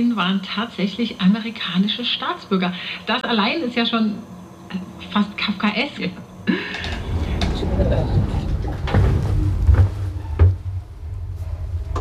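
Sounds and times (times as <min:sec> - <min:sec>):
speech: 0:00.0 - 0:07.0
heavy door closing with a deep rumbling thud: 0:06.6 - 0:10.9.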